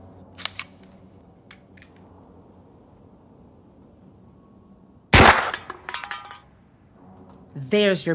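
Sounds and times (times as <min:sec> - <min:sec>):
gunshot fired at a tin can balanced on a person's head: 0:05.2 - 0:05.7.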